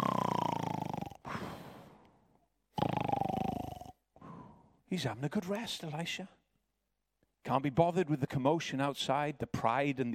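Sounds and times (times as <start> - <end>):
voice imitating a man snoring in bed: 0.0 - 1.5, 2.7 - 4.7
speech: 4.9 - 6.4, 7.5 - 10.1.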